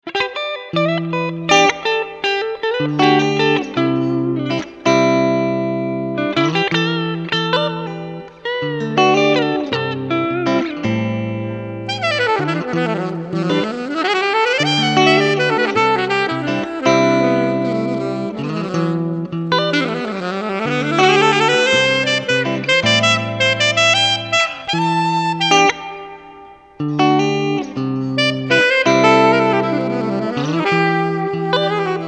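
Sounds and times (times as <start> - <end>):
chilled guitar: 0.0 - 32.0
saxophone: 0.7 - 32.0.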